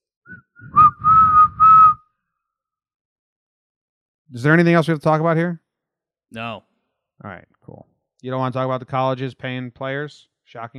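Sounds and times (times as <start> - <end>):
person whistling imitating a blown whistle: 0.3 - 2.0
speech: 4.3 - 5.6, 6.3 - 10.7.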